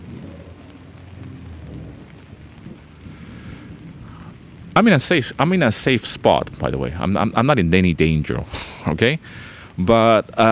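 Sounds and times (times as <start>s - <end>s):
wind buffeting the microphone: 0.0s - 7.4s
deep low thunder rumbling: 0.0s - 8.5s
heavy rain pouring in a thunderstorm: 0.0s - 10.4s
speech: 4.8s - 10.4s.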